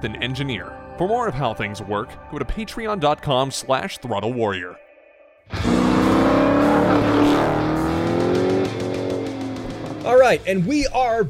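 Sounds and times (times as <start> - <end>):
speech: 0.0 - 4.8, 10.0 - 11.2
car engine revving: 5.5 - 10.4.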